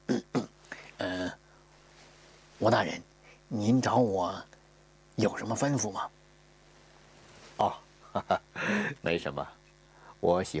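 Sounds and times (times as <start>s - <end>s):
person clearing throat on a cold early-winter day: 0.1s - 1.4s
speech: 2.6s - 4.5s, 5.2s - 6.2s, 7.6s - 9.6s, 10.2s - 10.5s.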